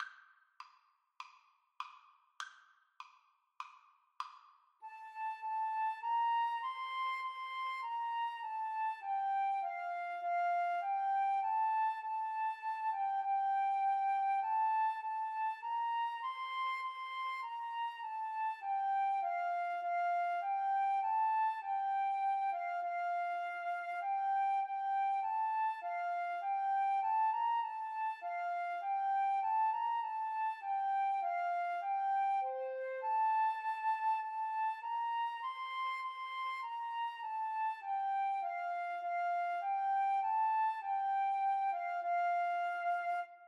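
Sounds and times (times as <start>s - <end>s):
flute duet: 4.8s - 43.4s.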